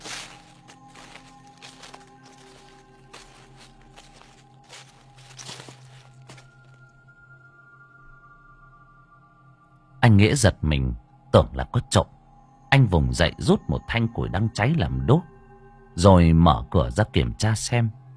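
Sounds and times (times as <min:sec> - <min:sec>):
soft rustling footsteps outside the door of a hut by a swollen river: 0:00.0 - 0:06.8
speech: 0:10.1 - 0:15.3, 0:16.0 - 0:18.0.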